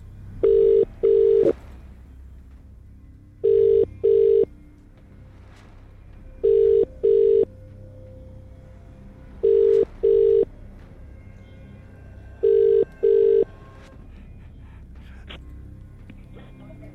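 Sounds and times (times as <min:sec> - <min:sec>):
telephone ringback tone on an outgoing call: 0:00.4 - 0:01.6, 0:03.4 - 0:04.5, 0:06.4 - 0:07.5, 0:09.4 - 0:10.5, 0:12.4 - 0:13.5.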